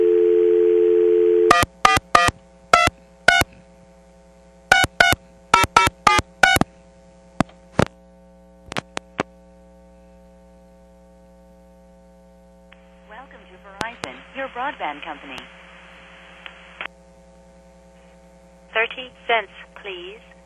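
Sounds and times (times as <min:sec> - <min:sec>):
payphone dial tone: 0:00.0 - 0:03.4
steady low hum: 0:00.0 - 0:20.4
short thin blips from automated coin toll system: 0:04.7 - 0:06.7
speech: 0:14.9 - 0:15.6, 0:19.0 - 0:20.4.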